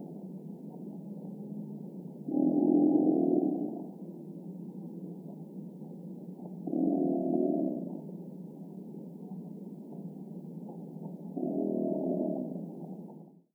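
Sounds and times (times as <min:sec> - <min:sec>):
alligator: 0:02.3 - 0:04.0, 0:06.7 - 0:08.1, 0:11.3 - 0:12.7.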